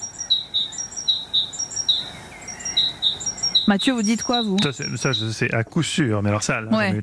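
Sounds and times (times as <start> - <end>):
great tit singing a two-note phrase: 0.0 - 5.5
soft hiss: 0.0 - 7.0
speech: 3.7 - 7.0.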